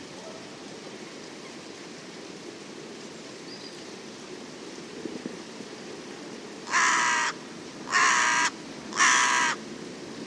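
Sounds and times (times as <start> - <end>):
bird cawing: 6.7 - 9.6.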